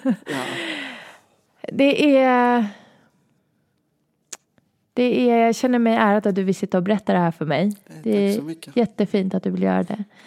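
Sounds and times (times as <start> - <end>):
speech: 0.0 - 0.8, 1.6 - 2.8, 5.0 - 10.2
person drawing and letting out deep breaths: 0.3 - 1.3.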